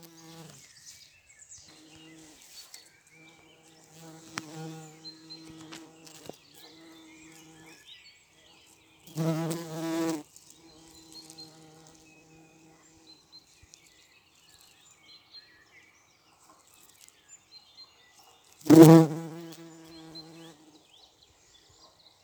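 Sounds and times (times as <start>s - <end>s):
bumblebee flight buzz: 0.0s - 0.6s, 3.2s - 7.7s, 9.1s - 12.8s, 18.6s - 20.6s.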